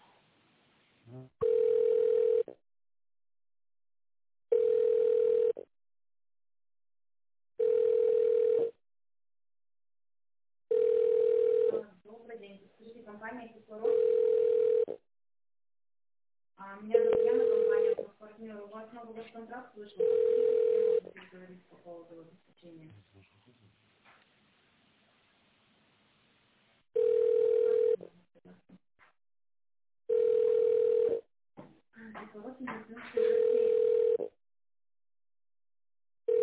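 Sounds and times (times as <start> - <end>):
telephone ringback tone while a call to a company office connects: 1.4 - 2.5, 4.5 - 5.6, 7.6 - 8.8, 10.7 - 11.8, 13.8 - 15.0, 17.0 - 18.0, 20.0 - 21.0, 27.0 - 28.0, 30.1 - 31.2, 33.2 - 34.3, 36.3 - 36.4
voices talking: 16.8 - 20.1.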